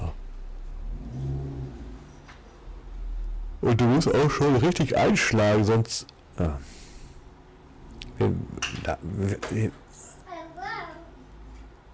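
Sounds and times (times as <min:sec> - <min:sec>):
car engine revving while someone tries to park: 0:00.0 - 0:03.6
speech: 0:03.6 - 0:06.7, 0:08.2 - 0:09.8.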